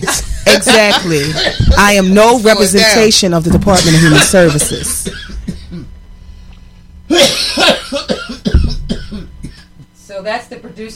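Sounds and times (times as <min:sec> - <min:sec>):
laughter: 0:00.0 - 0:02.0, 0:03.7 - 0:05.9, 0:07.1 - 0:08.5
speech: 0:00.0 - 0:05.3, 0:07.1 - 0:07.8, 0:10.2 - 0:10.9
woman hosting a broadcast coughing harshly: 0:03.7 - 0:05.9, 0:07.1 - 0:09.9.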